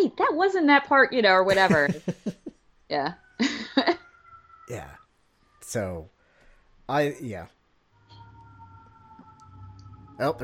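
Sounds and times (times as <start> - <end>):
speech: 0.1 - 3.9, 4.7 - 5.0, 5.7 - 6.2, 6.9 - 7.6, 10.2 - 10.4
laughter: 1.5 - 2.5
faint fire department sirens: 3.0 - 6.4, 7.0 - 10.4.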